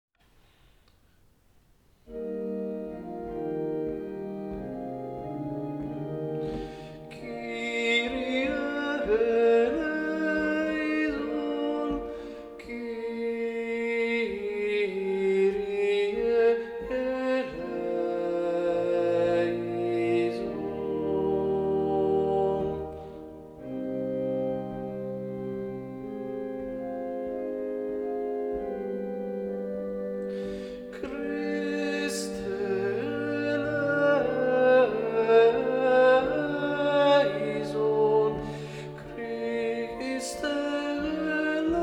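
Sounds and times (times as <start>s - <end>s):
sopranos and tenors singing: 2.1s - 41.8s.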